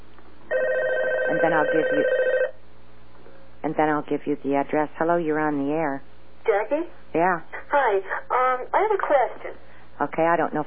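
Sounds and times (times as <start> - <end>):
phone ringing for an incoming call to a radio call-in show: 0.5 - 2.6
speech: 1.3 - 2.2, 3.8 - 10.6.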